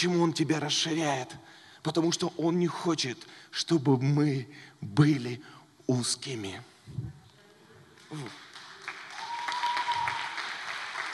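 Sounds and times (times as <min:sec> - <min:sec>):
speech: 0:00.0 - 0:07.2, 0:08.1 - 0:08.4
audience clapping: 0:08.0 - 0:11.1
crowd cheering: 0:08.6 - 0:11.1.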